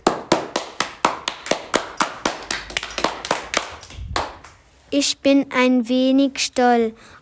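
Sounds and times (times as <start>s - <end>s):
crowd applause of crisp hand claps: 0.0s - 4.6s
speech: 4.9s - 7.1s.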